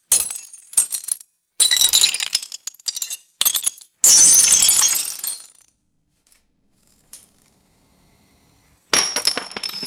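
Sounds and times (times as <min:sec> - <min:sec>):
thin glass shards dropping and shattering on concrete: 0:00.1 - 0:05.7, 0:09.0 - 0:09.8.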